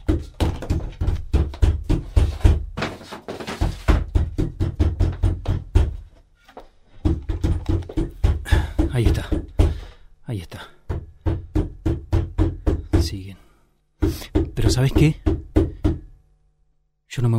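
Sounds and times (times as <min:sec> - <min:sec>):
heavy thuds and knocks of a door being barricaded: 0:00.0 - 0:02.8, 0:03.6 - 0:06.1, 0:07.0 - 0:09.9, 0:10.9 - 0:13.2, 0:14.0 - 0:16.1
speech: 0:14.8 - 0:15.3.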